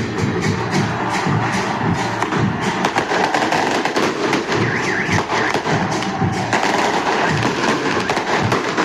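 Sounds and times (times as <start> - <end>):
crowd of football fans roaring: 0.0 - 8.8
fireworks and flares banging and crackling in a dense rapid barrage: 0.0 - 8.8.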